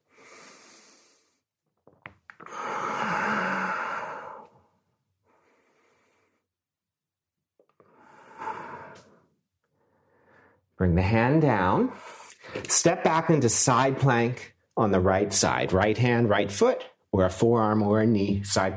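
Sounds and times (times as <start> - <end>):
deep breathing during a yoga twisting lunge: 0.0 - 1.5, 2.4 - 6.6, 7.8 - 10.8
speech: 10.8 - 18.7.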